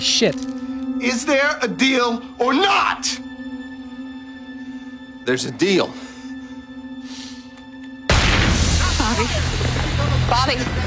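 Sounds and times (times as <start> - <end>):
speech: 0.0 - 3.2, 5.3 - 6.1, 10.3 - 10.8
gunshot fired inside a house: 8.1 - 9.3.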